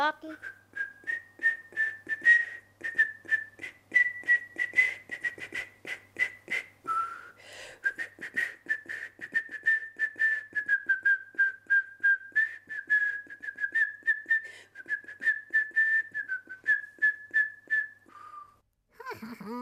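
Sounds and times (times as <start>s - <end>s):
speech: 0.1s - 0.6s
person whistling a bright melody: 0.3s - 18.6s.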